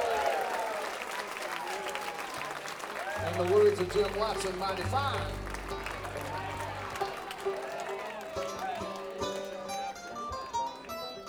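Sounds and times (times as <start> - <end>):
audience applause at a live bluegrass performance: 0.0 - 11.2
speech: 3.2 - 5.4.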